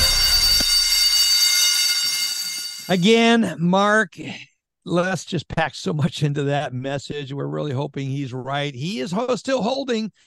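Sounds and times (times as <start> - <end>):
electronic alarm blaring: 0.0 - 3.2
speech: 2.9 - 10.2.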